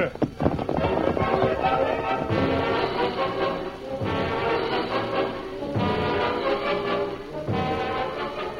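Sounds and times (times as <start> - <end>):
horses galloping down a hillside: 0.0 - 8.0
dense noisy rumble: 0.0 - 8.5.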